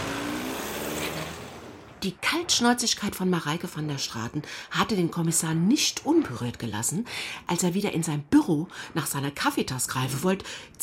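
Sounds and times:
SUV engine humming as the vehicle drives away: 0.0s - 2.8s
speech: 2.0s - 10.8s.

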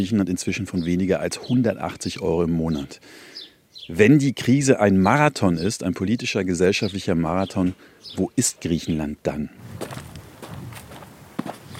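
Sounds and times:
speech: 0.0s - 10.1s
outdoor hiss: 0.0s - 11.7s
soft footsteps walking toward the coast in Greece: 9.6s - 11.7s.

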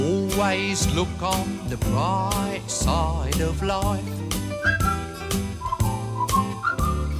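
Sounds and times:
deep bass: 0.0s - 7.1s
speech: 0.4s - 4.8s
man whistling a melody solo: 3.8s - 7.1s.

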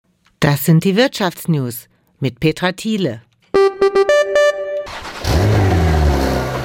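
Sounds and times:
speech: 0.4s - 3.3s
short tonal notes: 3.5s - 5.2s
Porsche sports car combustion engine revving: 5.1s - 6.6s.

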